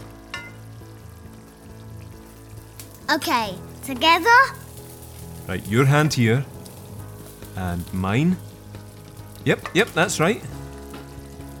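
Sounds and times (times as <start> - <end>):
pancake batter frying in a pan: 0.0 - 11.5
speech: 3.1 - 4.6, 5.5 - 6.5, 7.6 - 8.5, 9.4 - 10.6.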